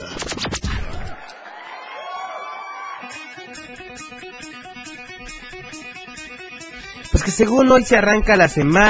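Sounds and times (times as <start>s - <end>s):
crowd whooping and yelling: 0.8s - 3.6s
sustained applause and cheering: 0.9s - 3.4s
speech: 7.1s - 8.8s.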